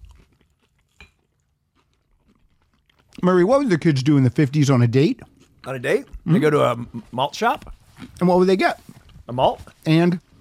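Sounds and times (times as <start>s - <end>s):
person chewing a sweet pickle bite dipped in ketchup: 0.0s - 3.2s, 5.2s - 7.0s, 7.6s - 8.2s
speech: 3.2s - 10.2s.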